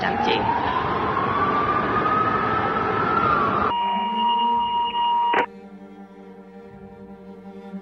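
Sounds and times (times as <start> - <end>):
speech: 0.0 - 0.6
dense traffic-like rumble: 0.0 - 3.7
emergency vehicle sirens wailing outside a window: 0.0 - 5.5.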